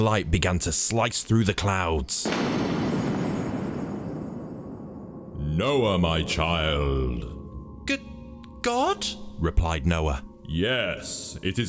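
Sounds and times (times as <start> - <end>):
speech: 0.0 - 2.9, 5.6 - 11.6
loud crash of thunder with deep heavy rumble: 2.3 - 5.6.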